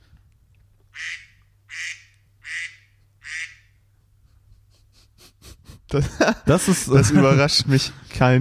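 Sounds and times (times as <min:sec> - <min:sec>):
low steady hum: 0:00.0 - 0:08.3
duck quacking phone ringtone: 0:01.0 - 0:03.7
laughter: 0:04.5 - 0:08.0
speech: 0:05.9 - 0:08.3.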